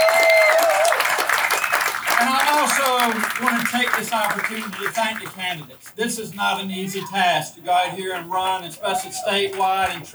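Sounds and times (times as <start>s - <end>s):
whistle from the crowd: 0.0s - 3.3s
crowd of Democratic Party supporters applauding: 0.0s - 10.1s
laughter: 0.0s - 10.1s
speech: 2.6s - 10.1s.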